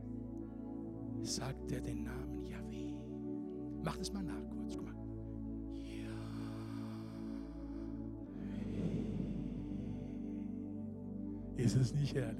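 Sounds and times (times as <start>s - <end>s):
steady low hum: 0.0s - 12.3s
speech: 1.2s - 3.0s, 3.8s - 5.1s, 11.6s - 12.3s
person breathing in and out deliberately: 5.8s - 11.6s.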